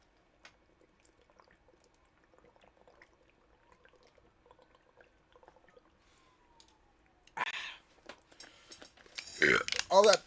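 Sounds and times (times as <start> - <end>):
wet clicks and swallows: 0.1 - 9.9
person gulping coconut water from a bottle: 0.6 - 6.0, 9.2 - 9.8
speech: 10.0 - 10.2.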